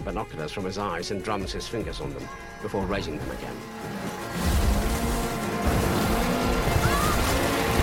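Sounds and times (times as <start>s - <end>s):
speech: 0.0s - 4.6s
turbulent ship wake churning around a small boat: 3.1s - 7.8s
low engine hum: 3.4s - 7.8s.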